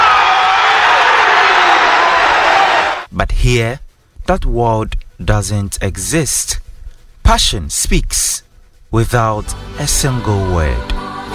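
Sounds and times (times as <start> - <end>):
large stadium football crowd roaring: 0.0 - 3.1
speech: 3.5 - 6.6, 7.3 - 11.3.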